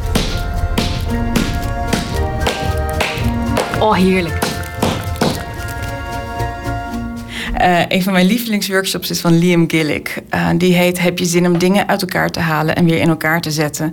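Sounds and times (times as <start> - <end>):
hammer striking a pencil resting on a wooden plank: 0.1 - 5.5
speech: 3.8 - 4.4, 7.6 - 13.9.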